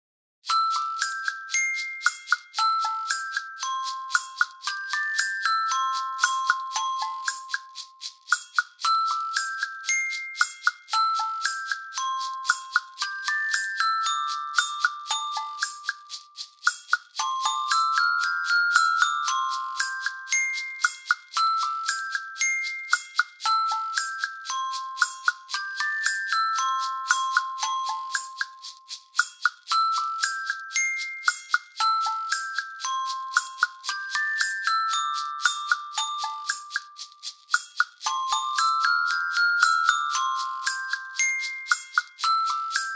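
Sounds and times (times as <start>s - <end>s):
chime bars: 0.5s - 42.9s.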